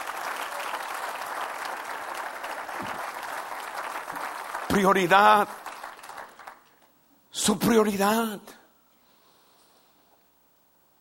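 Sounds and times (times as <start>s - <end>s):
audience applauding: 0.0s - 6.9s
speech: 4.7s - 5.6s, 7.4s - 8.6s.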